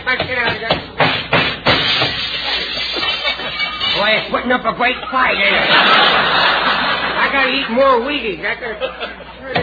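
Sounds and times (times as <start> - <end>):
hammer blows knocking something apart: 0.2 - 4.0
laughter: 2.4 - 8.0, 8.6 - 9.6
speech: 4.4 - 6.5, 7.3 - 9.6.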